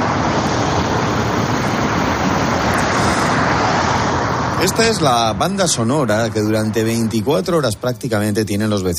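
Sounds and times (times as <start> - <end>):
heavy road traffic roaring near motorway: 0.0 - 8.9
speech: 4.6 - 8.9.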